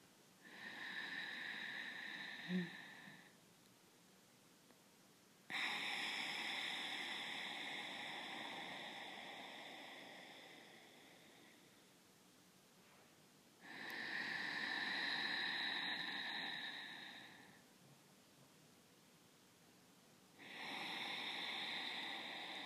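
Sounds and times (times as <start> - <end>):
slow breath through a slightly constricted throat: 0.0 - 3.4, 5.5 - 12.0, 12.9 - 17.8, 20.3 - 22.6.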